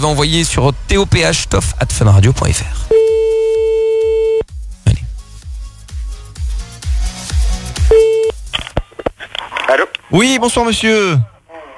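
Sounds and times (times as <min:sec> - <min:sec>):
speech: 0:00.0 - 0:03.2, 0:10.1 - 0:11.3
rhythmic pulsing beat: 0:02.8 - 0:08.6
telephone ringing tone of a call placed from a radio studio: 0:02.9 - 0:04.4, 0:07.9 - 0:08.3.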